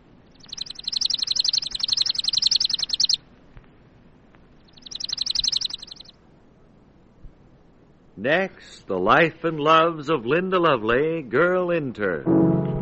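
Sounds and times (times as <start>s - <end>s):
chipping sparrow dry rapid trill of uniform chips: 0.3s - 3.2s, 4.6s - 6.2s
speech: 8.2s - 12.7s.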